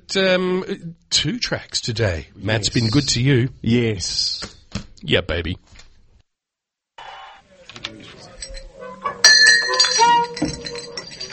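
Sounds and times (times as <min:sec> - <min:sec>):
speech: 0:00.1 - 0:05.7
glasses clinking together: 0:07.8 - 0:11.3.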